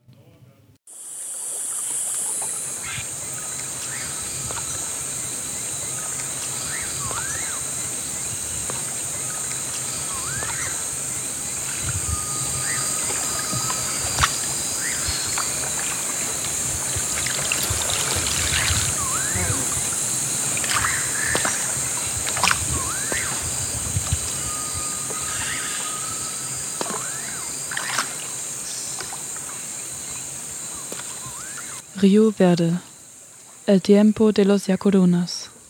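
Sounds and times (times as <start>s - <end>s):
constant hiss: 0.1s - 35.6s
canoe paddle dipping into river water: 1.4s - 24.5s, 26.7s - 31.7s
birds chirping: 1.6s - 35.5s
speech: 32.0s - 32.9s, 33.7s - 35.4s.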